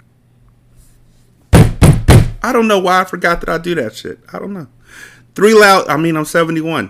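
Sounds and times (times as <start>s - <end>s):
heavy pounding on a front door: 1.5s - 2.4s
speech: 2.4s - 6.8s.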